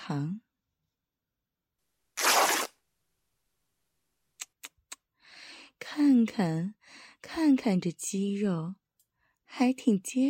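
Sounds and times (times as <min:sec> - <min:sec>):
speech: 0:00.1 - 0:00.5, 0:05.8 - 0:08.8, 0:09.5 - 0:10.2
shirt fabric being torn open: 0:02.2 - 0:02.8.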